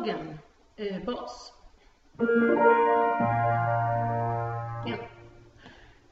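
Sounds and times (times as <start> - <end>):
bass part: 2.2 - 5.6.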